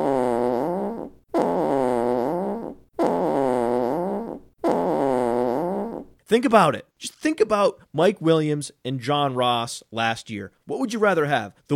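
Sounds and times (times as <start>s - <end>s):
fart sound effect: 0.0s - 6.1s
speech: 6.3s - 11.7s.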